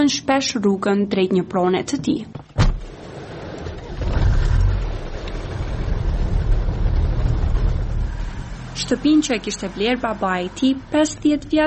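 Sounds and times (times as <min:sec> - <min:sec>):
speech: 0:00.0 - 0:02.4, 0:08.9 - 0:11.6
old red car engine rumbling as it drives past: 0:02.4 - 0:11.6.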